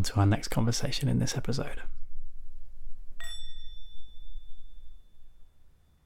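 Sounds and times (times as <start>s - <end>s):
speech: 0.0s - 2.0s
bell ringing: 3.2s - 5.3s.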